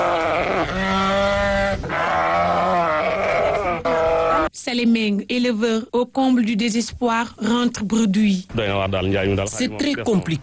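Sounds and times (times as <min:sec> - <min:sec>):
several sheep bleating at a livestock market: 0:00.0 - 0:04.5
speech: 0:04.6 - 0:10.4.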